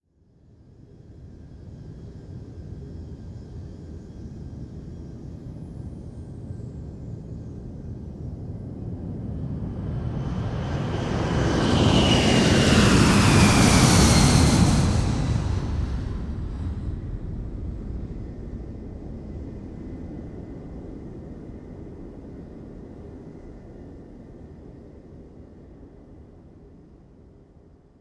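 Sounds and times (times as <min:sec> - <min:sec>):
jumbo jet taking off: 0:07.0 - 0:21.1.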